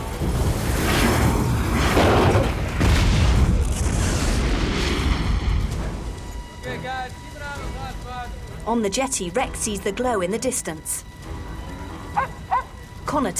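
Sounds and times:
explosion ripping through a building: 0.0 - 6.3
speech: 8.7 - 11.1, 13.1 - 13.3.

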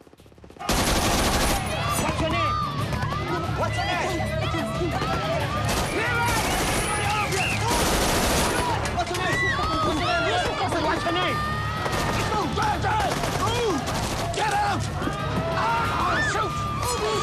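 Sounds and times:
loud sustained gunfire: 0.6 - 1.8, 5.7 - 8.9, 13.0 - 14.4
chaotic panicked crowd shouting and screaming: 1.4 - 17.2.

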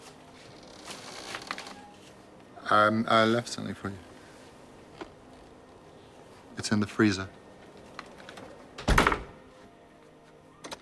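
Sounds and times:
speech: 2.7 - 4.1, 6.7 - 7.4
door shutting with a solid thump: 8.8 - 9.4, 10.6 - 10.8
short metallic click of a lock being turned: 10.6 - 10.8.

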